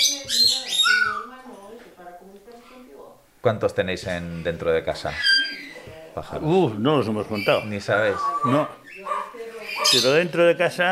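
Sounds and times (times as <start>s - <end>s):
several birds chirping and tweeting indoors: 0.0s - 1.5s, 4.1s - 10.8s
speech: 2.1s - 5.6s, 6.2s - 10.8s.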